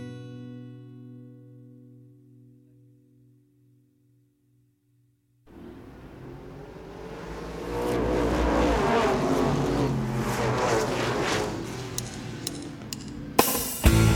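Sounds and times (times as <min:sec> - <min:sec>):
Volkswagen Type 4 engine idling and revving: 0:05.5 - 0:14.1.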